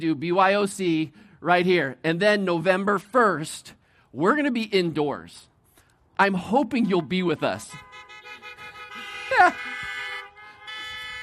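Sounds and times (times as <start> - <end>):
speech: 0.0 - 5.5, 6.2 - 7.9, 9.3 - 9.7
car horns honking: 6.7 - 11.2.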